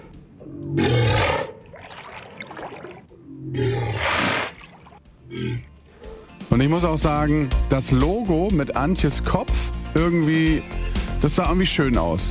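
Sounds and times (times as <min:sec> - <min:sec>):
walrus bellowing: 0:00.0 - 0:06.4
speech: 0:06.6 - 0:12.2.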